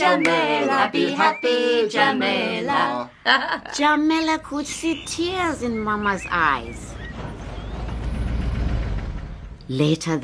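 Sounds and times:
speech: 0.0s - 7.3s, 9.7s - 10.2s
heavy truck engine rumbling: 3.0s - 10.2s
laughter: 3.2s - 3.9s.

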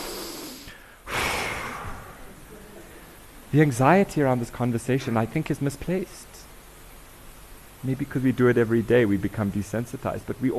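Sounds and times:
group of people exhaling together: 0.0s - 3.2s
speech: 3.5s - 6.4s, 7.8s - 10.5s.

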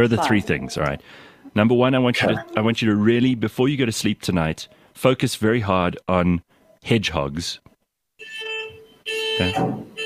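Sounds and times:
speech: 0.0s - 8.3s, 9.4s - 10.0s
neighbour's car alarm blaring in electronic tones: 8.2s - 10.0s.

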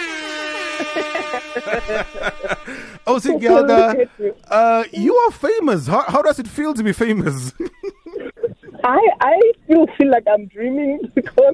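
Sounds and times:
air horn blaring: 0.0s - 3.9s
laughter: 0.3s - 10.0s
speech: 0.8s - 8.0s, 8.8s - 11.5s.

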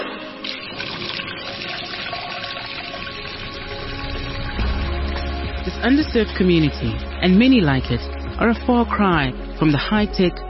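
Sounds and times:
water gushing from a truck's pump hose into containers: 0.4s - 8.0s
speech: 5.7s - 10.4s.

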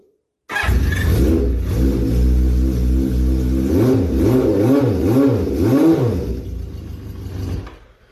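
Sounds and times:
motorcycle engine starting, idling and revving: 0.5s - 7.9s.

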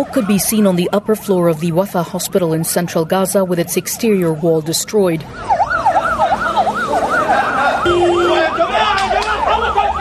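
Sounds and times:
speech: 0.0s - 5.6s
ambulance siren wailing at a hospital entrance: 0.0s - 9.9s
traffic noise: 0.0s - 9.9s
crowd noise at a hospital entrance: 6.1s - 9.9s.

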